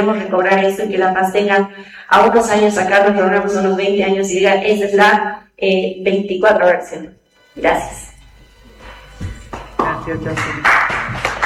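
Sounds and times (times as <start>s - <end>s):
speech: 0.0s - 8.0s, 9.8s - 11.0s
audience applause at a sports press conference: 9.5s - 11.4s.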